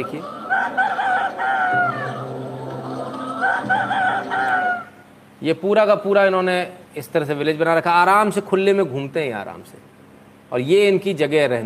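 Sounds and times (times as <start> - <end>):
speech: 0.0 - 0.4, 5.4 - 9.9, 10.5 - 11.6
free-roaming chickens clucking on a natural farm: 0.0 - 5.0
rooster crowing on a farm: 0.0 - 5.1.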